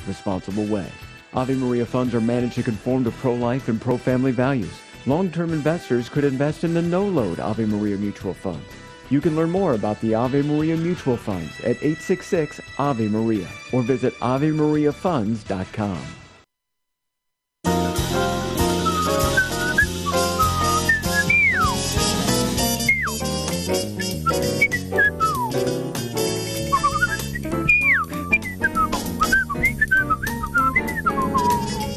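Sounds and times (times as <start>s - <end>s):
speech: 0.0s - 16.2s
instrumental backing: 17.7s - 31.9s
whistled jazz melody: 17.7s - 31.9s.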